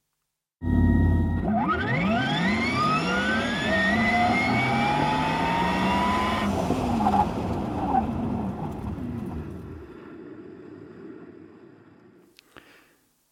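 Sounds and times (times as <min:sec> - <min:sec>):
electric sports car synthetic sound accelerating away: 0:00.6 - 0:09.6.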